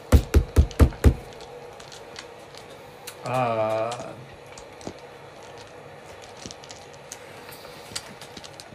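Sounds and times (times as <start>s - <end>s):
fist pounding hard on a solid door: 0.1s - 1.2s
speech: 3.2s - 4.1s.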